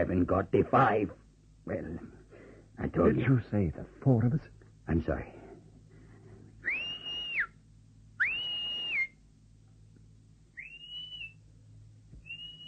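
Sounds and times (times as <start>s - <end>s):
speech: 0.0s - 2.2s, 2.8s - 5.4s
low hum: 0.0s - 12.6s
person whistling a tune: 6.6s - 7.6s, 8.2s - 9.2s, 10.6s - 11.4s, 12.2s - 12.6s.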